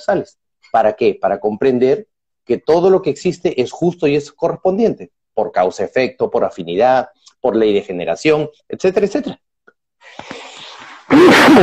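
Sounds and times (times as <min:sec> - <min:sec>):
speech: 0:00.0 - 0:10.4, 0:11.1 - 0:11.6
catch of breath: 0:10.0 - 0:11.6
person sneezing: 0:10.2 - 0:11.6.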